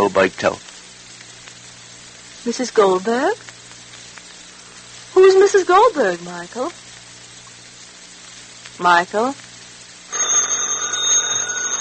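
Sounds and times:
speech: 0.0s - 0.7s, 2.4s - 3.5s, 5.2s - 6.8s, 8.8s - 9.4s
telephone bell ringing: 10.1s - 11.7s.

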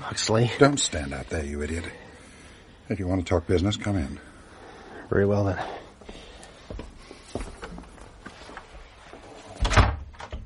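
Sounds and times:
speech: 0.2s - 2.0s, 2.9s - 4.3s, 5.1s - 6.8s
library door opening with clicks and creaks: 9.6s - 10.4s.

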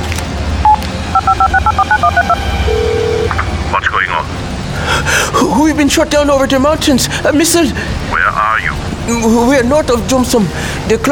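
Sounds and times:
low hum: 0.0s - 11.1s
telephone keypad dual-pitched dialing tones: 0.7s - 3.4s
speech: 5.9s - 11.1s.

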